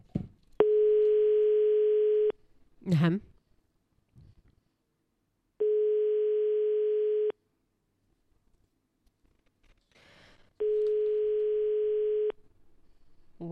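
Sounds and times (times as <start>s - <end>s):
telephone ringback tone on an outgoing call: 0.6s - 2.4s, 5.6s - 7.4s, 10.6s - 12.4s
speech: 2.9s - 3.3s.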